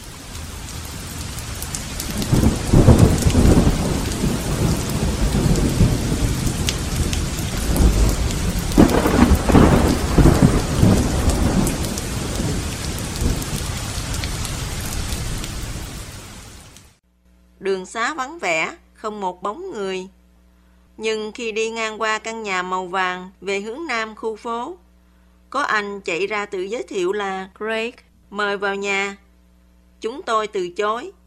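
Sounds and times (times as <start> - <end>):
heavy rain pouring: 0.0 - 17.0
deep rolls of thunder rumbling: 0.4 - 16.4
speech: 17.9 - 20.2, 21.0 - 24.8, 25.5 - 29.2, 30.0 - 31.2.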